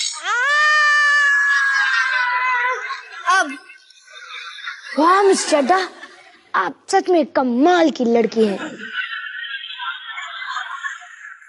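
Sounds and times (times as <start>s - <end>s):
woman screaming: 0.2s - 2.8s
laughter: 0.9s - 6.5s, 8.4s - 11.4s
speech: 5.0s - 6.0s, 6.6s - 8.9s.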